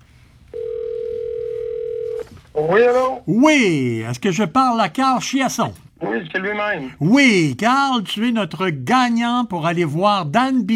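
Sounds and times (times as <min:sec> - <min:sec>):
telephone line ringing tone after a number is dialed: 0:00.5 - 0:02.4
speech: 0:02.6 - 0:10.7.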